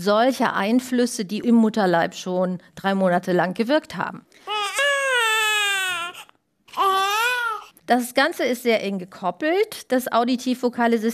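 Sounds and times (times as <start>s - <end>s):
speech: 0.0s - 4.5s, 7.9s - 11.1s
newborn baby wailing: 4.4s - 7.8s.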